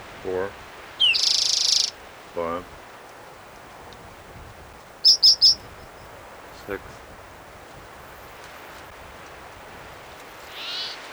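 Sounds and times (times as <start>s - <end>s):
low hiss: 0.0s - 11.1s
speech: 0.2s - 0.6s, 2.4s - 2.8s, 6.7s - 7.0s
bird crying: 0.9s - 2.1s, 5.0s - 6.1s, 10.4s - 11.1s.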